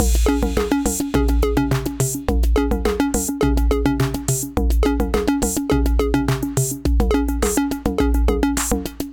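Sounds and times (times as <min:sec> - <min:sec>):
808 drum machine beat: 0:00.0 - 0:09.1.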